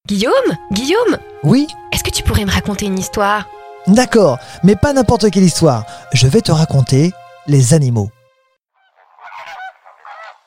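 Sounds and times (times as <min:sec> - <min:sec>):
speech: 0:00.1 - 0:08.2
flock of flamingos honking and gabbling: 0:08.8 - 0:10.4.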